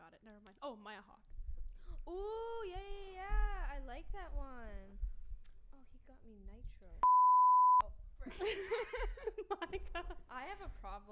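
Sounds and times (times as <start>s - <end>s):
speech: 0.2s - 1.4s, 2.0s - 5.1s, 5.8s - 7.3s, 8.2s - 11.1s
censor bleep tone covering swearing: 7.0s - 7.9s
laughter: 8.2s - 10.2s.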